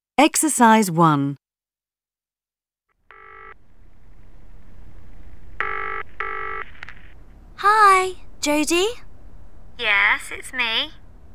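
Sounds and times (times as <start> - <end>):
speech: 0.2 - 1.4, 7.6 - 9.0, 9.8 - 11.0
electronic telephone ringing: 3.1 - 3.6, 5.6 - 6.7
low hiss: 3.1 - 11.3.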